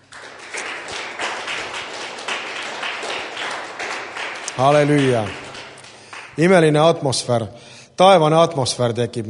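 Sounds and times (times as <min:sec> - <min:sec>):
crowd applauding for worship singers: 0:00.0 - 0:07.0
speech: 0:04.6 - 0:05.4, 0:06.4 - 0:09.2.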